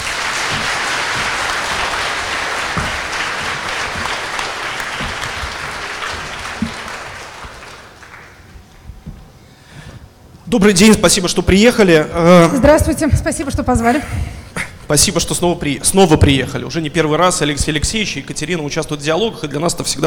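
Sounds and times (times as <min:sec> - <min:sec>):
audience applause as guests are invited onto a stage: 0:00.0 - 0:08.5
speech: 0:10.5 - 0:14.3, 0:14.9 - 0:20.0.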